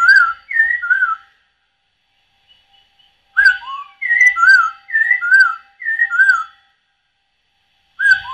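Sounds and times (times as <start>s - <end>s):
Masked laughingthrush singing loud whistled phrases during dance display: 0.0s - 1.3s, 3.4s - 6.6s, 8.0s - 8.3s.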